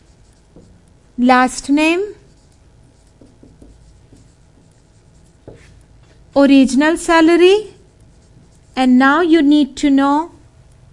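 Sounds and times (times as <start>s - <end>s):
pen scratching across paper: 0.0s - 0.8s, 2.0s - 5.8s, 7.9s - 8.9s
speech: 1.2s - 2.2s, 6.4s - 7.8s, 8.8s - 10.3s.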